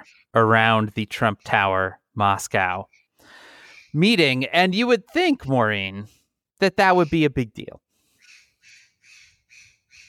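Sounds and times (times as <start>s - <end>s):
bird squawking outdoors by a swimming pool: 0.0s - 2.0s, 2.8s - 4.2s, 6.8s - 10.0s
speech: 0.0s - 3.0s, 3.9s - 7.8s.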